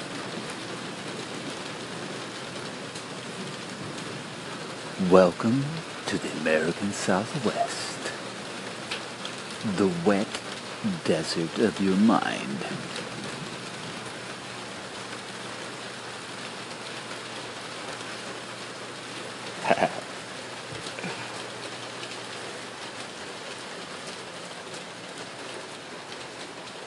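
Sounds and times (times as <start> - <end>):
light rain in the desert of the American Southwest: 0.0 - 26.8
speech: 5.0 - 7.9, 9.6 - 10.2, 10.8 - 13.0.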